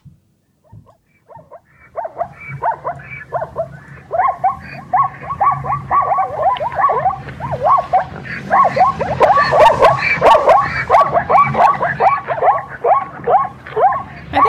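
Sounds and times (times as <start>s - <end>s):
zebras giving yelping barks and brays: 0.6s - 14.4s.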